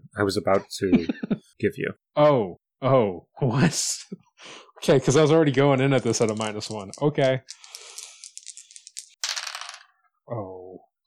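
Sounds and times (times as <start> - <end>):
speech: 0.2 - 7.8, 10.3 - 10.5
dice tumbling across a hard table: 5.5 - 10.1.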